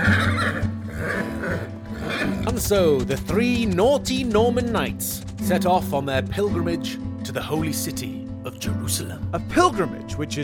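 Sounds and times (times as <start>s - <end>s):
horse neighing with a long quavering whinny: 0.0s - 3.2s
speech: 2.5s - 10.4s.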